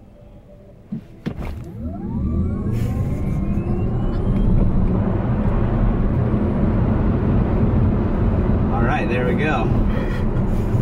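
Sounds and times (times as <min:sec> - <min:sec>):
road and wind noise: 0:00.0 - 0:10.8
sharp thumps: 0:00.9 - 0:01.8
fast four-door sedan launching and accelerating hard: 0:01.3 - 0:10.8
speech: 0:09.2 - 0:10.1.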